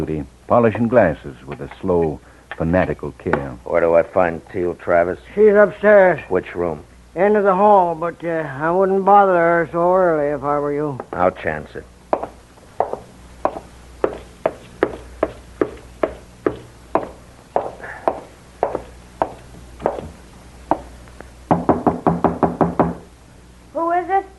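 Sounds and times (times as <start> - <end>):
speech: 0.0 - 11.9
knocking on the door of an upstairs room: 12.2 - 20.1, 21.5 - 23.1.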